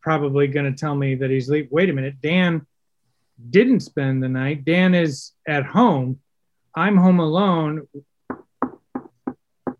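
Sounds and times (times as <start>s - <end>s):
speech: 0.0s - 2.7s, 3.4s - 6.2s, 6.8s - 8.1s
firm knocks on a bedroom door: 8.3s - 9.7s.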